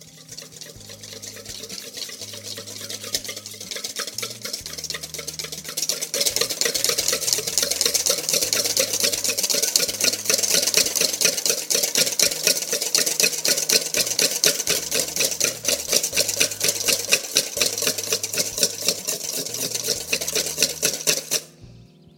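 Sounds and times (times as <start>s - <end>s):
whisk whipping cream into Chantilly: 0.0s - 21.6s.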